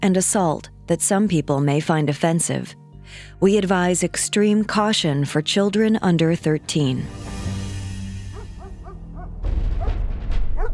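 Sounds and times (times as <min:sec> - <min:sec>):
speech: 0:00.0 - 0:07.4
dog barking on a bitterly cold January morning: 0:08.4 - 0:10.0.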